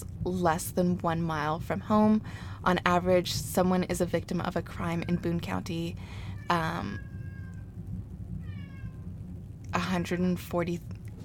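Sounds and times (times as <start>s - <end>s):
speech: 0.0s - 7.1s, 9.8s - 10.9s
soft low background noise: 0.0s - 11.2s
domestic cats meowing in the background: 4.7s - 9.2s.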